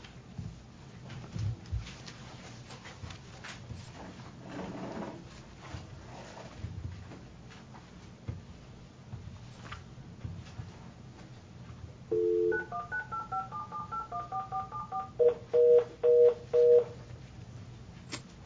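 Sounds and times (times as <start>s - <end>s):
telephone keypad dialing tones: 12.1s - 17.0s.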